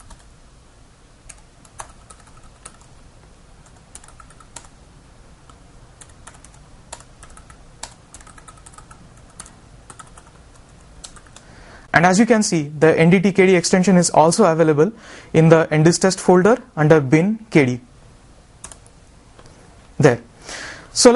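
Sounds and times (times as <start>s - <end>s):
typing a command on a computer keyboard: 0.0s - 0.3s, 1.3s - 2.9s, 3.6s - 4.7s, 5.5s - 11.5s, 18.6s - 18.9s
speech: 12.0s - 17.9s, 20.0s - 20.3s, 21.0s - 21.1s.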